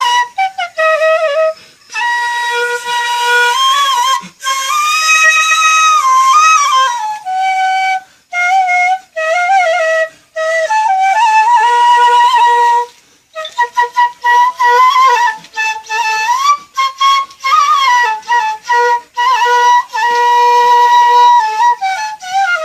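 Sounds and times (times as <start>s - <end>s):
high flute ringtone: 0.0s - 10.0s, 10.6s - 22.6s.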